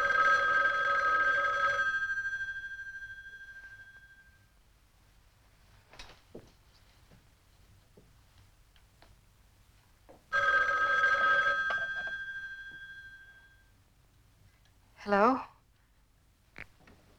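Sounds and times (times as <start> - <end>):
telephone bell ringing with a bright metallic trill: 0.0 - 4.5, 10.3 - 13.8
speech: 15.1 - 15.5.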